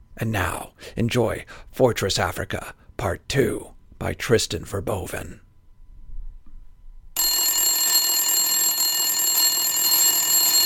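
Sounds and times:
speech: 0:00.2 - 0:05.4
metallic alarm clock bell ringing: 0:07.2 - 0:10.6.

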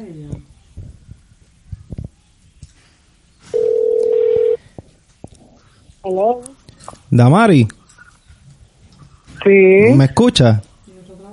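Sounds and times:
telephone ringback tone of an outgoing call: 0:03.5 - 0:04.6
speech: 0:06.1 - 0:06.5, 0:07.1 - 0:07.8, 0:09.5 - 0:10.7.

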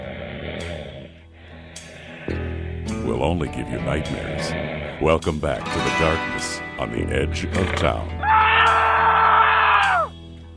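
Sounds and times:
speech: 0:03.1 - 0:08.2
loud sustained scream: 0:08.2 - 0:10.1.

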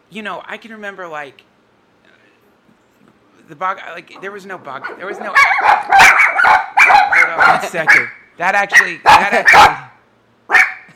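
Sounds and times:
speech: 0:00.1 - 0:01.5, 0:03.5 - 0:09.9
dogs barking: 0:04.6 - 0:10.9.

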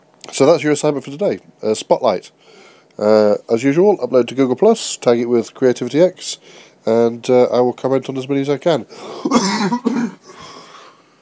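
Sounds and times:
speech: 0:00.4 - 0:10.5
harsh coughing from an ill person: 0:09.0 - 0:10.6.

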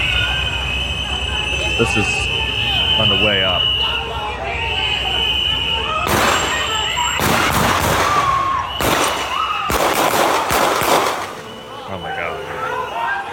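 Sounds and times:
constant noisy background of recorded video: 0:00.0 - 0:13.3
speech: 0:01.8 - 0:02.3, 0:03.0 - 0:03.7
loud sharp gunshots with tail: 0:06.0 - 0:11.5.

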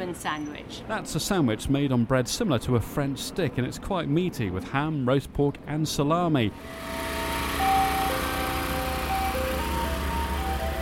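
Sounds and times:
speech: 0:00.1 - 0:07.1
ice cream van chime on a Miami street: 0:06.6 - 0:10.8
ice cream van engine rumble: 0:06.6 - 0:10.8.

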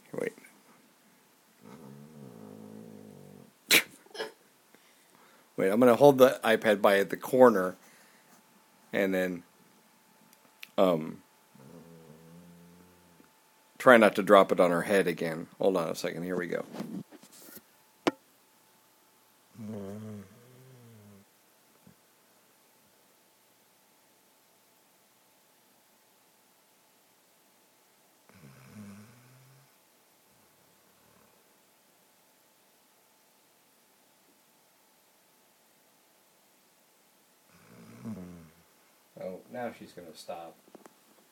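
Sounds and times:
faint steady hum: 0:00.0 - 0:41.3
person snoring while asleep: 0:01.6 - 0:03.5, 0:11.6 - 0:13.2, 0:19.5 - 0:21.2, 0:28.3 - 0:29.7, 0:37.5 - 0:38.6
speech: 0:05.6 - 0:07.8, 0:08.9 - 0:09.5, 0:10.8 - 0:11.2, 0:13.8 - 0:17.0, 0:39.7 - 0:40.7.

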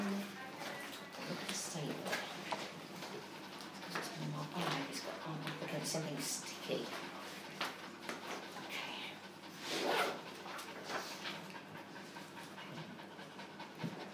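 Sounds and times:
voices: 0:00.0 - 0:07.5
guide dog panting: 0:00.0 - 0:14.1.

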